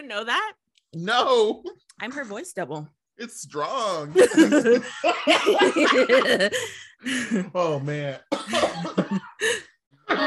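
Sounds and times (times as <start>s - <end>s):
speech: 0.1s - 10.2s
laughter: 4.1s - 7.5s, 8.4s - 10.2s
harsh raspy coughing fit: 8.3s - 9.4s, 10.0s - 10.2s.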